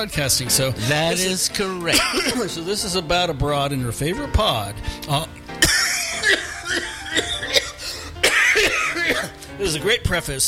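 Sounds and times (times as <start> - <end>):
speech: 0.0 - 5.4, 9.6 - 10.4
raspy coughing fit: 1.9 - 2.5, 5.6 - 9.4.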